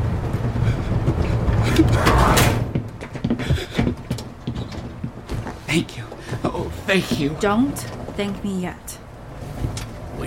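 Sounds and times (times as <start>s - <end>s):
steady rumble of a moving train: 0.0s - 10.2s
sliding door closing with a rattling whoosh and thud: 1.8s - 2.7s
speech: 5.8s - 6.0s, 6.9s - 9.0s.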